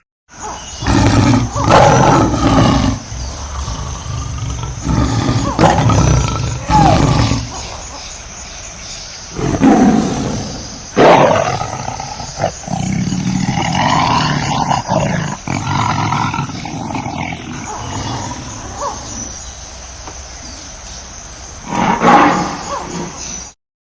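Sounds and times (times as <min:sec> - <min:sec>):
lion roaring and growling: 0:00.8 - 0:07.9, 0:09.3 - 0:19.3, 0:21.6 - 0:23.2.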